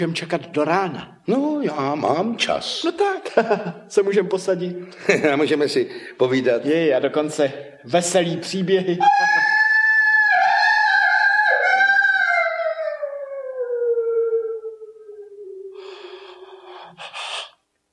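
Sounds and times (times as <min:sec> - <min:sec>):
speech: 0:00.0 - 0:09.5
long mournful wolf howl: 0:09.0 - 0:16.1
brief breathy snorts or gasps: 0:15.8 - 0:17.7.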